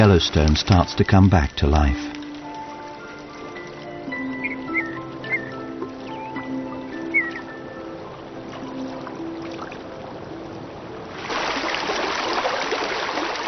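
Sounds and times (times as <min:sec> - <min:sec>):
speech: 0:00.0 - 0:02.2
soft sustained musical tones: 0:00.0 - 0:11.2
snowmelt stream rushing in Yellowstone: 0:00.0 - 0:13.4
bird chirps: 0:04.1 - 0:08.0.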